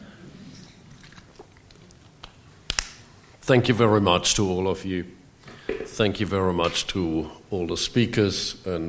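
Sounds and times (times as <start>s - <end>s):
faint room hum: 0.0s - 8.8s
person sipping water: 0.4s - 2.2s
speech: 3.5s - 5.2s, 6.0s - 8.8s.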